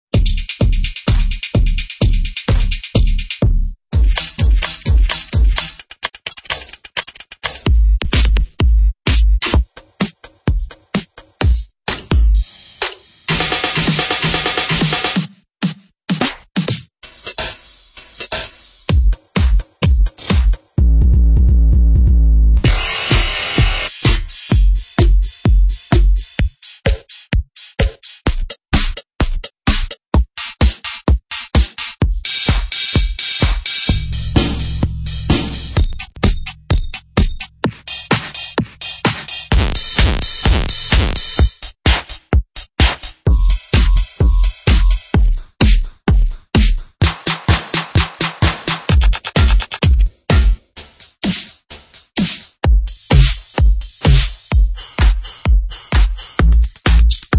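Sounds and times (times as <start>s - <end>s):
EDM drums: 0.2s - 57.3s.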